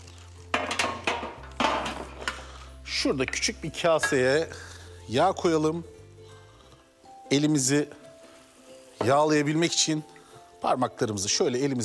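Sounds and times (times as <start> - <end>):
oven baking tray clanking as it is picked up and handled during cooking: 0.6 - 2.3
speech: 3.0 - 5.9, 7.3 - 8.0, 9.0 - 11.8.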